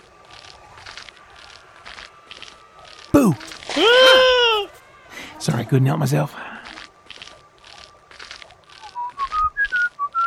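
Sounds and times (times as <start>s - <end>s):
crunching footsteps on gravel: 0.0s - 10.2s
speech: 3.2s - 4.2s, 5.7s - 6.5s
person whistling clear bright notes: 9.0s - 10.2s.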